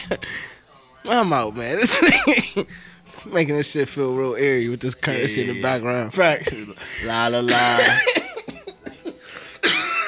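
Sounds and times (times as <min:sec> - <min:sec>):
speech: 0:01.0 - 0:08.2
person coughing: 0:07.8 - 0:10.0.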